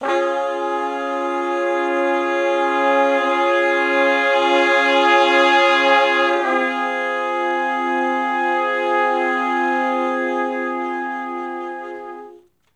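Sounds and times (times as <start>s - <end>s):
slow minor blues chords in F: 0.0s - 12.4s
horn sections: 0.0s - 12.7s.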